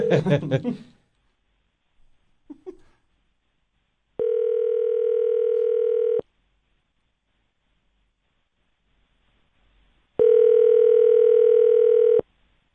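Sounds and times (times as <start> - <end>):
telephone ringback tone of an unanswered call: 4.2 - 6.2, 10.2 - 12.2.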